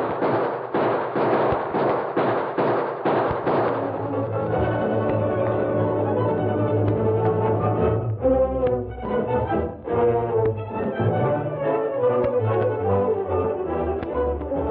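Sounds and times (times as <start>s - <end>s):
rapid volley of sharp gunshots: 0.0s - 4.2s
loud sustained orchestral music: 3.7s - 14.7s.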